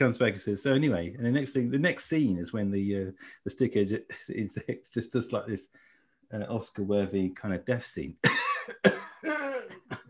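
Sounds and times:
speech: 0.0s - 10.0s
person coughing: 8.2s - 10.0s.

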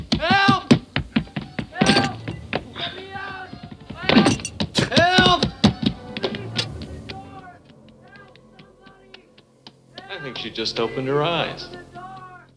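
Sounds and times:
strained voices and shouts: 0.1s - 0.8s, 1.7s - 9.3s, 9.9s - 12.5s
door being forced and broken down: 1.8s - 2.3s
speech: 10.4s - 11.9s.

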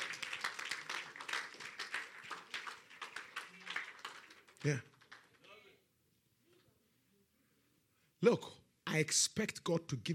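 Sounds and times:
audience clapping: 0.0s - 5.7s
speech: 4.6s - 4.9s, 8.2s - 10.1s.

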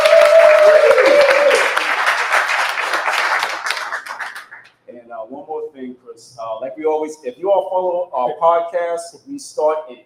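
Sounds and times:
crowd applause: 0.0s - 4.7s
speech: 6.2s - 10.0s.

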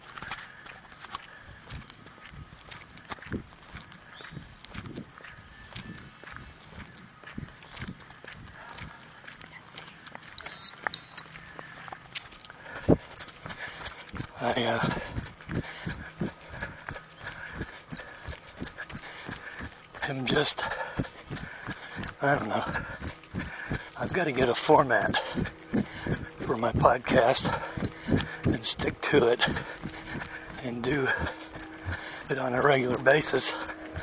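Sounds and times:
outdoor noise: 0.0s - 34.0s
runner's footsteps: 0.0s - 34.0s
heart rate monitor warning beeps: 5.5s - 6.7s, 10.4s - 11.2s, 12.8s - 34.0s
speech: 14.6s - 15.0s, 20.2s - 20.8s, 22.2s - 22.9s, 24.2s - 25.5s, 26.5s - 27.7s, 28.6s - 29.7s, 30.6s - 31.4s, 32.3s - 33.6s.

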